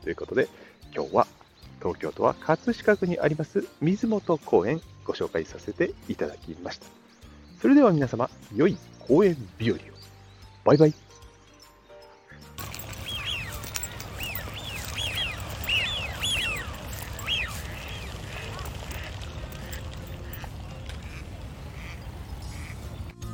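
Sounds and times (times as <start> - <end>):
speech: 0.0 - 7.0, 7.6 - 10.0, 10.6 - 11.0
large flock of ducks calling on a park pond: 12.3 - 23.2.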